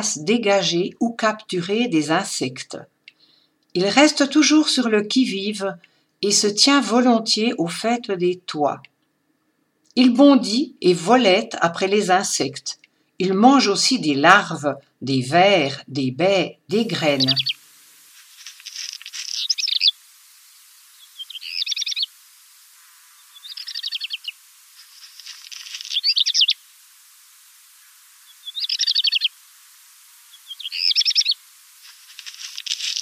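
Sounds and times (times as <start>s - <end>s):
speech: 0.0s - 2.9s, 3.7s - 8.9s, 10.0s - 17.5s
songbird singing: 16.7s - 17.6s, 18.5s - 26.9s, 27.6s - 29.5s, 30.2s - 31.5s, 32.1s - 33.0s.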